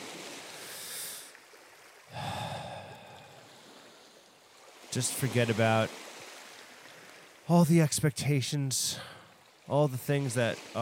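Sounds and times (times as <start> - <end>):
deep breathing during meditation by the water: 0.5 - 1.3, 2.1 - 3.6
speech: 4.9 - 6.0, 7.5 - 10.8.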